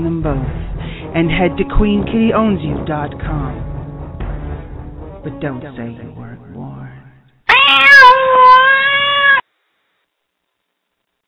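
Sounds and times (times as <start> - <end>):
speech: 1.2 - 3.7, 5.2 - 6.2
long drawn-out cat meow: 7.5 - 9.4.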